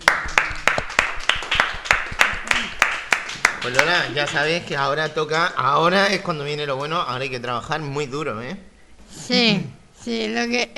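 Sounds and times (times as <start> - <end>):
teacher and classmates clapping in unison: 0.0 - 4.6
speech: 3.6 - 10.7.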